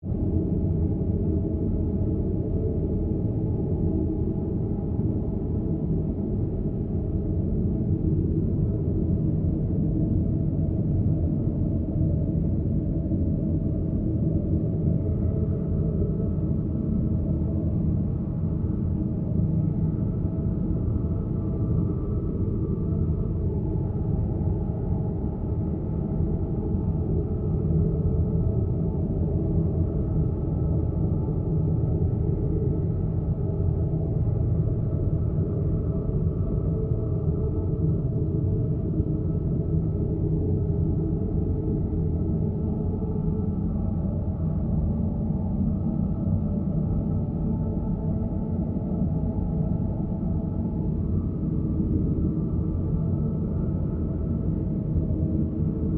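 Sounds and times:
ambient tonal drones: 0:00.1 - 0:55.9.

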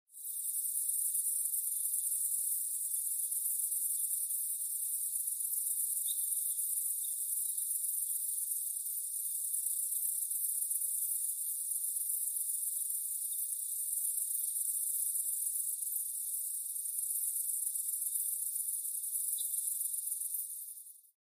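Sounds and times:
crickets chirping in daytime: 0:00.2 - 0:21.1.

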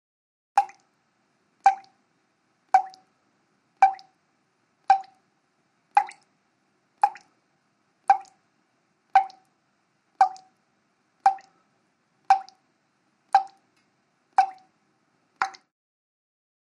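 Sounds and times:
water dripping at slow to medium pace: 0:00.6 - 0:01.0, 0:01.6 - 0:02.0, 0:02.7 - 0:03.2, 0:03.8 - 0:04.2, 0:04.8 - 0:05.3, 0:05.9 - 0:06.4, 0:07.0 - 0:07.4, 0:08.0 - 0:08.5, 0:09.1 - 0:10.6, 0:11.2 - 0:11.6, 0:12.2 - 0:12.7, 0:13.3 - 0:14.8, 0:15.4 - 0:15.7.

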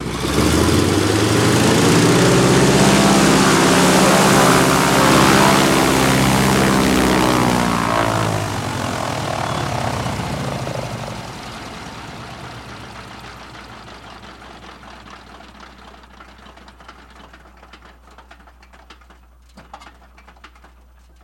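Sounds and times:
DHC aircraft engine revving and shutting off: 0:00.0 - 0:14.3.

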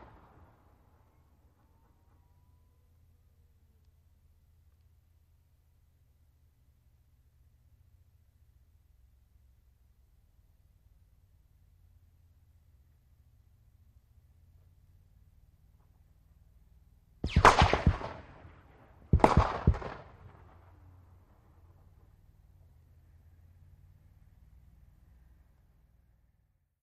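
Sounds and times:
50 caliber bullet impacts from distant firing: 0:17.3 - 0:20.7.

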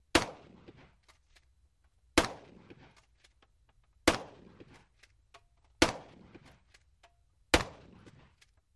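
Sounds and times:
12 gauge shotgun shots: 0:00.1 - 0:01.0, 0:02.2 - 0:03.0, 0:04.0 - 0:04.9, 0:05.8 - 0:06.6, 0:07.5 - 0:08.4.

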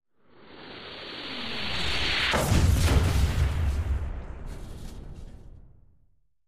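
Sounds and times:
incoming artillery explosion: 0:01.8 - 0:06.1.

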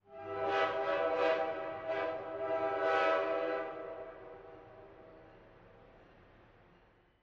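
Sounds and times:
freight train horn: 0:00.0 - 0:05.2.

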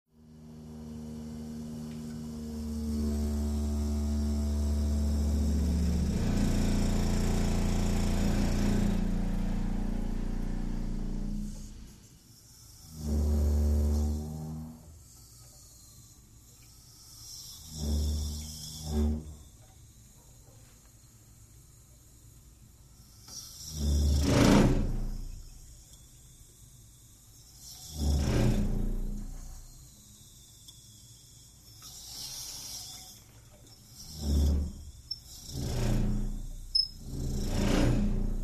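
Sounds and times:
water pipes moaning in a basement: 0:00.4 - 0:11.7, 0:12.8 - 0:15.6, 0:16.8 - 0:19.9, 0:23.6 - 0:25.6, 0:27.7 - 0:29.7, 0:32.3 - 0:38.4.

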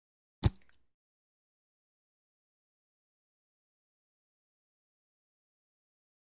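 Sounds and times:
water bottle lid opening: 0:00.4 - 0:00.8.

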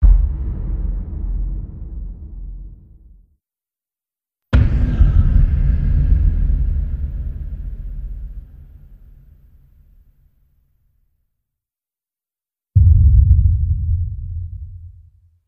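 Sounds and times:
deep drums: 0:00.0 - 0:02.9, 0:04.6 - 0:08.6, 0:12.8 - 0:15.2.

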